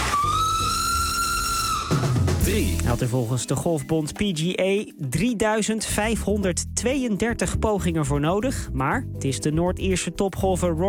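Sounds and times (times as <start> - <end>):
steam train whistle in a park: 0.0 - 2.5
speech: 2.5 - 10.8.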